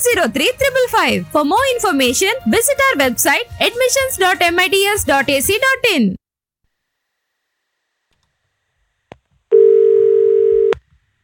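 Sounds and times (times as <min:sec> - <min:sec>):
speech: 0:00.0 - 0:06.2
telephone line tone after a call was cut off: 0:09.5 - 0:10.8.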